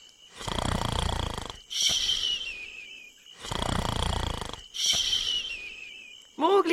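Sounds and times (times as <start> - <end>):
three sleepers snoring under a tree: 0.0 - 2.7, 3.3 - 5.8.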